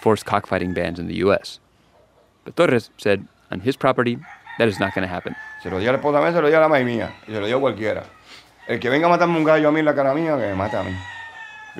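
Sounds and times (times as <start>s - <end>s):
speech: 0.0s - 1.6s, 2.4s - 11.1s
rooster crowing: 4.2s - 11.7s.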